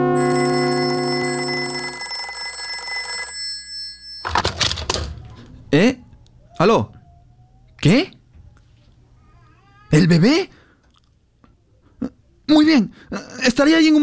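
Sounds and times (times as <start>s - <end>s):
telephone ringing with buzzy harmonic ring: 0.2s - 4.9s
speech: 6.6s - 6.9s, 7.8s - 8.1s, 10.0s - 10.5s, 12.7s - 14.0s.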